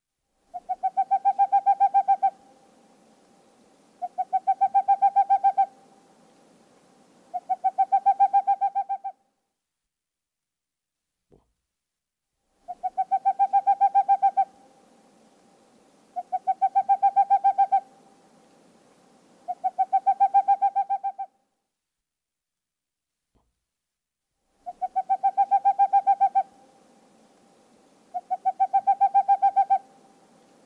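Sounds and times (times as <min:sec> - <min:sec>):
Boreal Owl calling in rapid hoots: 0:00.5 - 0:02.5, 0:04.0 - 0:05.8, 0:07.3 - 0:09.2, 0:12.6 - 0:14.6, 0:16.1 - 0:18.0, 0:19.4 - 0:21.4, 0:24.6 - 0:26.7, 0:28.1 - 0:30.0.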